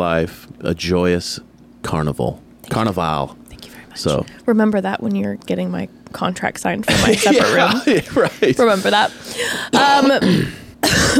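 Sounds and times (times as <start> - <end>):
speech: 0.0 - 3.4, 4.0 - 11.1
laughter: 6.9 - 9.2
person getting over an illness coughing: 9.8 - 11.1.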